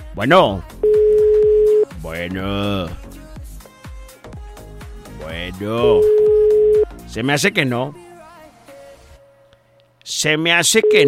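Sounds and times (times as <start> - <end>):
speech: 0.2 - 1.0, 2.0 - 3.2, 5.3 - 6.2, 7.1 - 8.0, 10.1 - 11.0
steady telephone tone on a call attempt: 0.8 - 1.8, 5.8 - 6.9.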